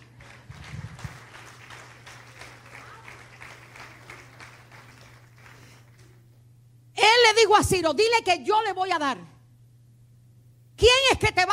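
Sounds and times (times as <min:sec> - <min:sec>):
crowd applauding: 0:00.0 - 0:06.2
speech: 0:07.4 - 0:09.3, 0:11.2 - 0:11.5.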